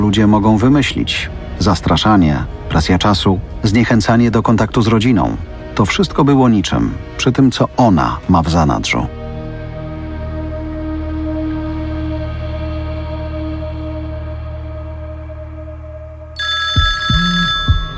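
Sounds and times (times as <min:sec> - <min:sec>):
steady droning background: 0:00.0 - 0:16.4
speech: 0:00.1 - 0:09.2
telephone ringing with a bright trilling electronic tone: 0:16.4 - 0:17.9.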